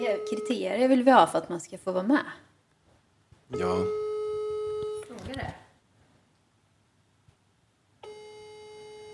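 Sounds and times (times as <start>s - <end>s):
steady electronic dual ringing tone of an outgoing phone call: 0.0s - 1.1s, 3.5s - 5.2s, 8.0s - 9.1s
speech: 0.0s - 2.5s, 3.5s - 4.0s, 5.3s - 5.6s.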